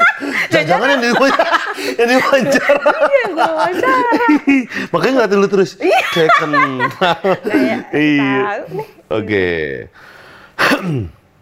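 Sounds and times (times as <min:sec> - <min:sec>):
laughter: 0:00.0 - 0:05.2, 0:05.8 - 0:08.4
speech: 0:00.6 - 0:11.2
raspy throat clearing: 0:10.6 - 0:11.2.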